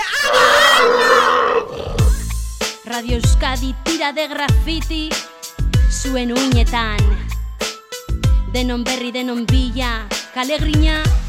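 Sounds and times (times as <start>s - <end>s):
voice imitating pig grunting squeal: 0.2s - 2.2s
speech: 3.0s - 5.3s, 6.0s - 7.3s, 8.5s - 11.2s.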